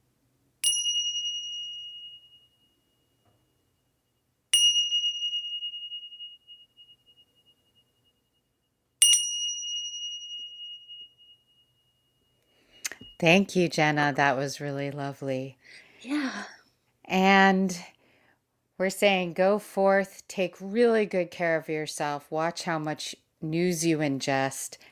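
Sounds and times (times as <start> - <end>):
clear meditation bell strikes: 0.6 - 3.8, 4.5 - 12.7
speech: 13.2 - 17.9, 18.8 - 24.8.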